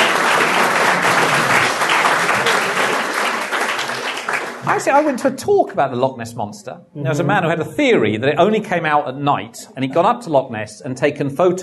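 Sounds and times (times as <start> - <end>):
room full of people applauding: 0.0 - 5.1
speech: 4.8 - 11.6.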